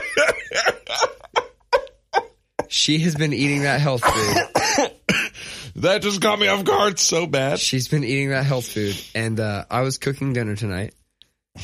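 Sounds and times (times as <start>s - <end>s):
person coughing harshly: 0.0s - 1.2s, 3.5s - 5.4s
laughter: 0.0s - 2.7s
speech: 0.3s - 1.2s, 2.8s - 5.0s, 5.8s - 11.0s.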